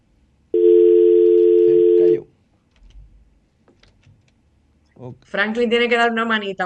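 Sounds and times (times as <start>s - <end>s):
low noise: 0.0s - 6.6s
telephone line tone from an incoming call: 0.6s - 2.2s
speech: 5.1s - 6.6s.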